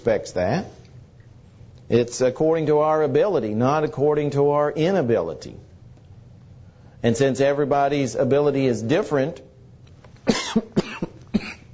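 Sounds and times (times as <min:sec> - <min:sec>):
speech: 0:00.0 - 0:00.8, 0:01.9 - 0:05.7, 0:07.0 - 0:09.5
harsh chesty coughs: 0:10.2 - 0:11.7.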